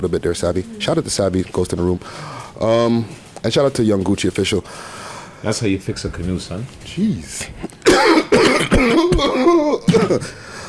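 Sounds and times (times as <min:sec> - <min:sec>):
speech: 0:00.0 - 0:10.4
raspy throaty breaths: 0:02.0 - 0:02.6, 0:04.6 - 0:05.5, 0:10.2 - 0:10.6
harsh hacking coughs: 0:07.7 - 0:10.4.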